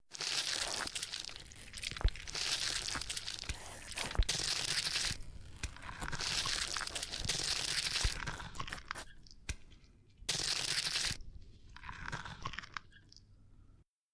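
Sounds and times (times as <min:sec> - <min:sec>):
zombie eating: 0:00.1 - 0:09.2, 0:10.3 - 0:13.1.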